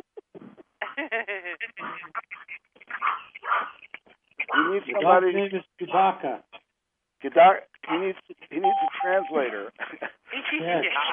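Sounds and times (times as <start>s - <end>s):
speech: 1.0s - 2.3s, 4.6s - 6.5s, 7.2s - 11.1s
dog barking over a phone line: 3.0s - 3.8s, 4.5s - 4.8s.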